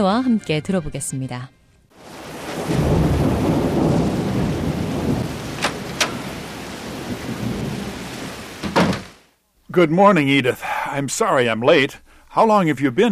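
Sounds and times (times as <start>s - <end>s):
speech: 0.0s - 1.6s, 9.8s - 13.1s
heavy rain: 1.9s - 9.4s
low rumble of thunder: 2.0s - 9.1s.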